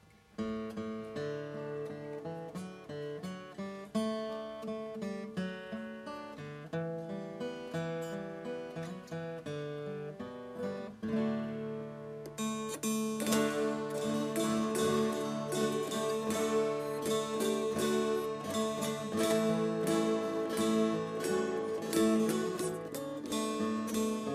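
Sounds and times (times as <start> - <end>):
guitar playing a folk tune: 0.4 - 24.3
dulcimers playing a folk tune: 12.9 - 24.3.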